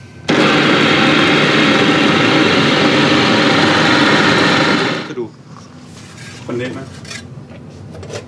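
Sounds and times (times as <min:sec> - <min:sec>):
kitchen blender blending shrimp paste and fish sauce: 0:00.3 - 0:05.2.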